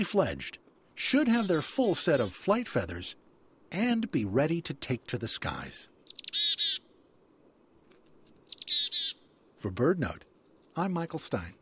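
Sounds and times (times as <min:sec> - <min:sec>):
speech: 0:00.0 - 0:05.9, 0:09.6 - 0:11.5
soft hiss: 0:00.0 - 0:11.5
harsh buzzy chickadee calls: 0:01.0 - 0:03.0, 0:06.0 - 0:07.6, 0:08.4 - 0:09.7, 0:10.3 - 0:11.5.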